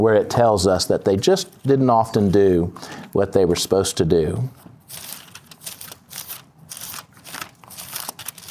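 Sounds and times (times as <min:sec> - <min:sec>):
speech: 0:00.0 - 0:05.1
many Bible pages turning at a Bible study: 0:04.9 - 0:08.4.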